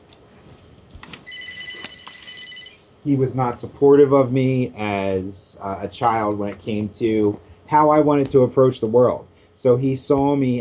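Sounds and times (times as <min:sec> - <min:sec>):
telephone ringing with a bright electronic trill: 0:01.3 - 0:02.9
speech: 0:03.0 - 0:10.5.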